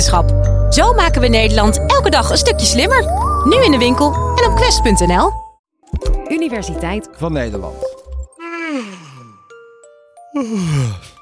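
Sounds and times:
speech: 0.1s - 7.9s, 8.7s - 9.0s, 10.4s - 11.1s
brief chiming tone: 0.8s - 5.6s
long voiced human yawns sliding into groans: 8.4s - 9.4s, 10.4s - 11.2s.

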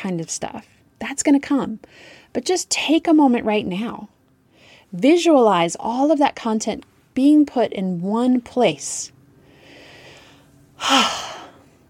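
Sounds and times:
speech: 0.0s - 4.2s, 4.9s - 9.2s, 10.8s - 11.4s
deep relaxing breath with soft inhale and long sighing exhale: 9.4s - 11.8s.

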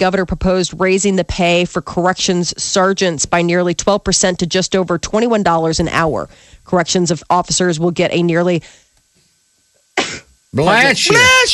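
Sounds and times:
speech: 0.0s - 8.8s, 10.0s - 11.5s
person sneezing: 10.0s - 10.3s.

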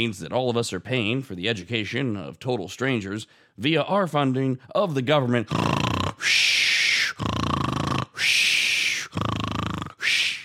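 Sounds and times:
speech: 0.0s - 6.4s
loud exaggerated snoring: 5.5s - 10.4s.

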